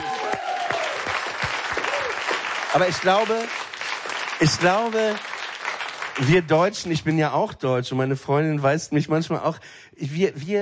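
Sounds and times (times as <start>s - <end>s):
studio audience applause at a show: 0.0s - 7.2s
speech: 2.8s - 3.6s, 4.4s - 5.3s, 6.2s - 10.6s.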